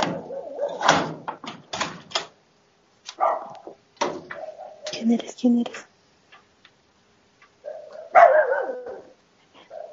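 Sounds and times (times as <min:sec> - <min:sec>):
dog barking with a drawn-out whining bark: 0:00.2 - 0:00.9, 0:03.2 - 0:03.7, 0:04.3 - 0:04.9, 0:07.6 - 0:09.9
speech: 0:05.0 - 0:05.9.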